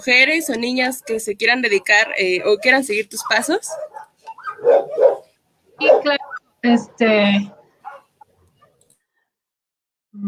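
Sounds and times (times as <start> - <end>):
speech: 0.0 - 4.0, 5.8 - 7.6
dog barking: 0.3 - 6.5, 7.4 - 8.8
dog yelping or whining: 2.4 - 6.5, 7.5 - 8.8.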